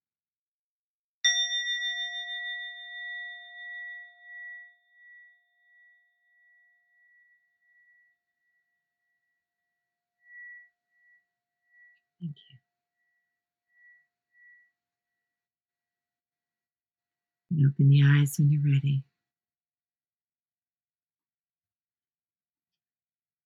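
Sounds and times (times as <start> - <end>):
meditation bell struck and ringing: 1.2 - 8.4
speech: 17.6 - 19.1.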